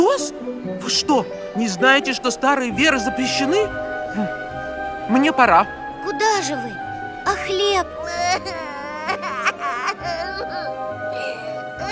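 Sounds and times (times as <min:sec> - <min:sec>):
speech: 0:00.2 - 0:04.4, 0:05.1 - 0:08.8
child crying in high-pitched sobs: 0:07.3 - 0:11.8.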